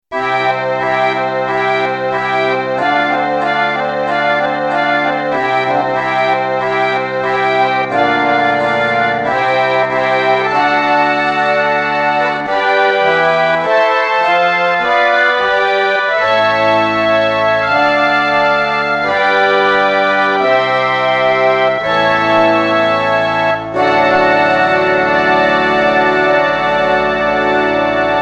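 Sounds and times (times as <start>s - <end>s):
American pump organ: 0.1s - 28.2s.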